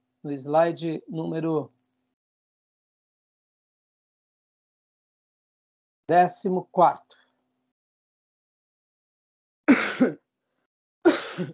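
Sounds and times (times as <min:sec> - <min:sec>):
speech: 0:00.2 - 0:01.8, 0:06.1 - 0:07.2, 0:10.0 - 0:10.2, 0:11.0 - 0:11.5
person coughing: 0:09.7 - 0:10.2, 0:11.1 - 0:11.5
throat clearing: 0:09.7 - 0:10.2, 0:11.1 - 0:11.5.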